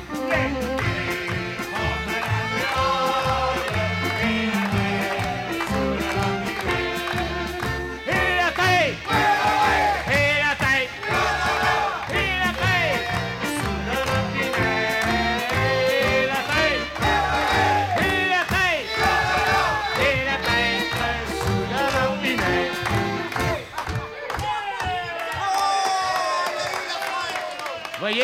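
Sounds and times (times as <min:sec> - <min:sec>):
large audience of men singing loudly in unison: 0:00.3 - 0:07.4, 0:08.0 - 0:23.6
whoops from the audience: 0:24.4 - 0:28.0.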